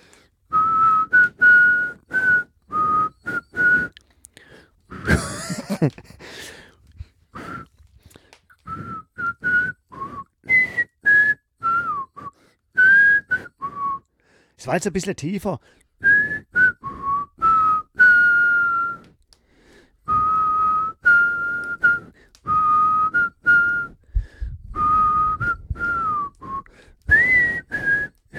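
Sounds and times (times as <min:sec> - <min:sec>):
person whistling a theme tune: 0:00.5 - 0:04.0, 0:07.3 - 0:07.8, 0:08.6 - 0:14.1, 0:16.0 - 0:19.2, 0:20.0 - 0:24.0, 0:24.6 - 0:28.3
laughter: 0:05.0 - 0:06.2
speech: 0:05.8 - 0:06.6, 0:14.6 - 0:15.8.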